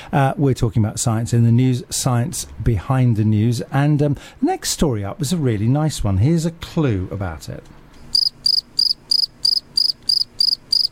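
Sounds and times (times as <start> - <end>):
speech: 0.1 - 7.8
cricket chirping: 8.1 - 10.9.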